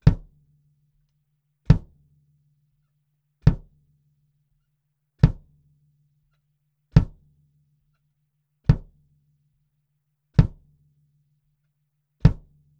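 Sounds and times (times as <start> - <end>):
kick drum recorded with SM57: 0.0 - 0.4, 1.7 - 2.0, 3.4 - 3.8, 5.2 - 5.6, 6.9 - 7.4, 8.7 - 9.1, 10.4 - 10.8, 12.2 - 12.7.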